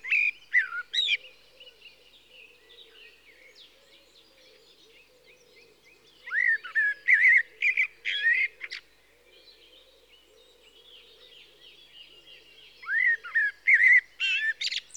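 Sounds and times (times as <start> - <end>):
common blackbird Turdus merula song: 0.0 - 14.9.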